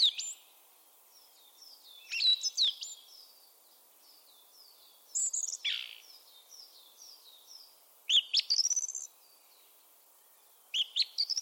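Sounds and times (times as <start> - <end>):
bird sharp chirps and trills: 1.2 - 3.4, 4.0 - 9.5, 10.4 - 11.4.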